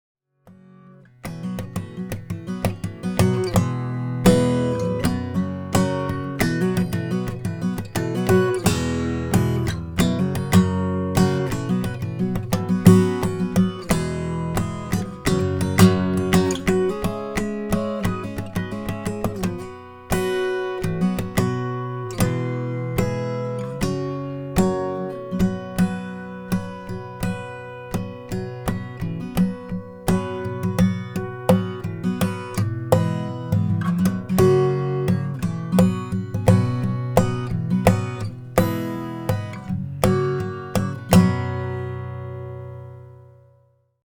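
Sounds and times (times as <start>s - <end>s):
Olson SJ acoustic guitar with chocolate and cedar top: 0.4s - 44.0s.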